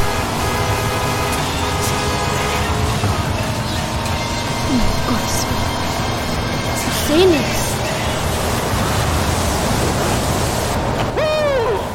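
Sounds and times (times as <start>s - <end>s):
sandstorm wind roar: 0.0s - 11.9s
tonal voice-like sweep: 4.7s - 5.7s
speech: 7.1s - 7.5s.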